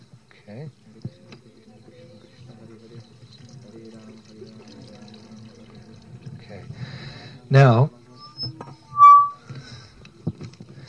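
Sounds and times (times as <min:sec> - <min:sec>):
speech: 0:00.5 - 0:01.2, 0:07.5 - 0:07.9
milk trickling over hands and a garland during a ceremony: 0:00.8 - 0:07.2.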